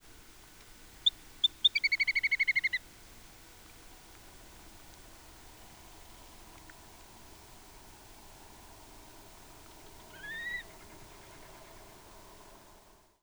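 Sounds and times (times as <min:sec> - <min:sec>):
Little Grebe ssp. poggei: 0:01.0 - 0:02.9, 0:09.6 - 0:12.8.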